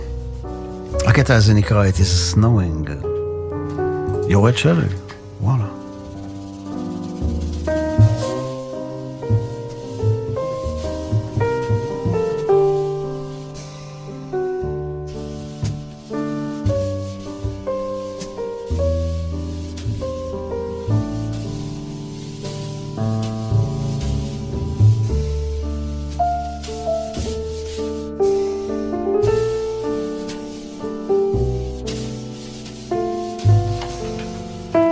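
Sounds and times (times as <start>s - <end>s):
jazz piano trio playing: 0.0s - 34.9s
speech: 1.2s - 3.1s, 4.3s - 5.6s.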